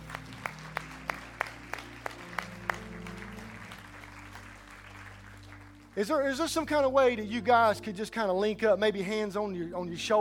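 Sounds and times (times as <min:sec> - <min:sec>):
audience clapping in unison: 0:00.0 - 0:06.4
speech: 0:06.0 - 0:10.1.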